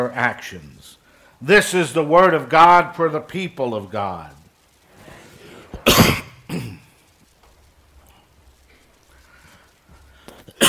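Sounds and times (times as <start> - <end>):
speech: 0.0 - 4.4
person with allergies coughing: 5.8 - 6.9
person with allergies clearing their throat: 5.8 - 7.0.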